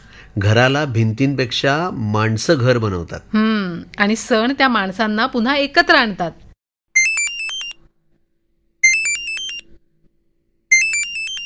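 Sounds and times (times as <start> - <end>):
speech: 0.4 - 6.4
phone ringtone for an incoming video call: 7.0 - 7.8, 8.8 - 9.7, 10.7 - 11.4.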